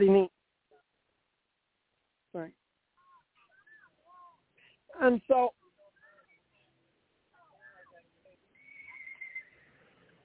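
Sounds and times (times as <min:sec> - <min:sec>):
speech: 0:00.0 - 0:00.3, 0:05.0 - 0:05.6
horse neighing: 0:08.6 - 0:10.2.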